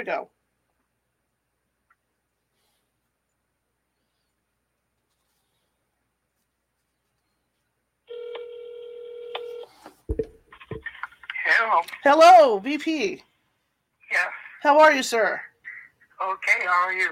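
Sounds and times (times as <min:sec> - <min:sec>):
speech: 0:00.0 - 0:00.4, 0:11.6 - 0:13.3, 0:14.1 - 0:15.5, 0:16.2 - 0:17.1
electronic ringing tone of a call being placed from a cell phone: 0:08.1 - 0:09.8.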